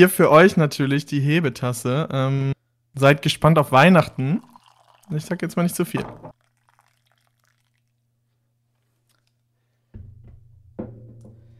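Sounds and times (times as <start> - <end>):
speech: 0.0 - 4.5, 5.1 - 6.4
tea pouring into a cup: 3.4 - 8.0.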